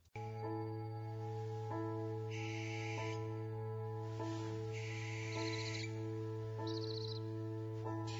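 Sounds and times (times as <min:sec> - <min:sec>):
steady low humming drone: 0:00.0 - 0:08.1
barn owl giving harsh, hissing screeches: 0:02.3 - 0:03.3, 0:04.7 - 0:06.0, 0:06.6 - 0:07.2.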